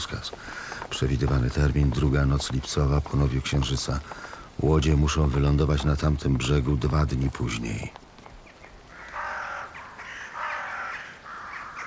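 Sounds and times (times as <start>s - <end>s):
speech: 0.0s - 0.4s, 1.0s - 8.0s
flock of crows cawing loudly flying over a road: 0.4s - 0.8s, 8.4s - 11.8s.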